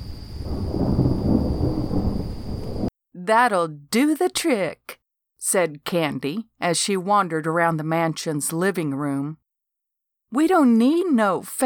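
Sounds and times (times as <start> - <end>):
faint hiss of rain: 0.0 - 2.9
low rolling thunder from an electrical storm: 0.0 - 2.9
speech: 3.3 - 9.4, 10.3 - 11.6.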